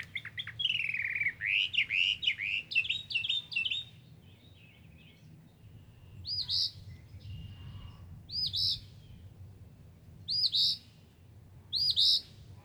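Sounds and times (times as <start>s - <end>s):
northern mockingbird song: 0.0s - 9.3s, 10.3s - 11.0s, 11.7s - 12.4s.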